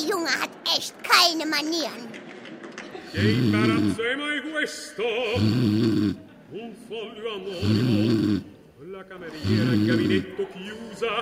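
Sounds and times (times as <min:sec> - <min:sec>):
speech: 0:00.1 - 0:02.2, 0:03.1 - 0:11.2
loud exaggerated snoring of someone asleep in a theater: 0:03.1 - 0:04.0, 0:05.3 - 0:06.3, 0:07.6 - 0:08.6, 0:09.3 - 0:10.3.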